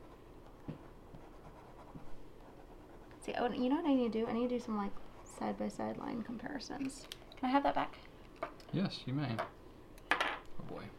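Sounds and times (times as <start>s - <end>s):
pen with wet-writing ink scratching on paper: 1.1s - 3.1s
speech: 3.2s - 8.1s, 8.7s - 9.6s.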